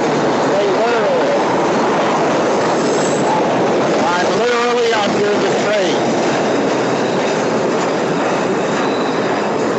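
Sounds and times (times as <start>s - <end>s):
train rumbling overhead: 0.0s - 9.7s
train metal wheels squealing: 2.6s - 3.5s, 5.6s - 9.7s.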